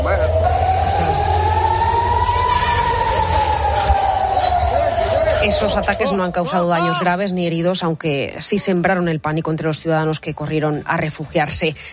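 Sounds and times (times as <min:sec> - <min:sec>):
air raid sirens wailing over Israel's second-largest city: 0:00.0 - 0:07.3
low rumbling city background: 0:00.0 - 0:11.5
speech: 0:05.4 - 0:11.9.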